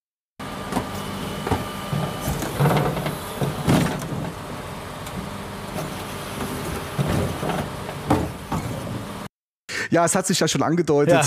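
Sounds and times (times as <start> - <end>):
garbage truck engine idling and rumbling: 0.4 - 9.3
garbage truck hydraulic whines: 0.4 - 9.3
bins banging while being handled: 0.7 - 4.5, 5.7 - 9.1
speech: 9.9 - 11.2.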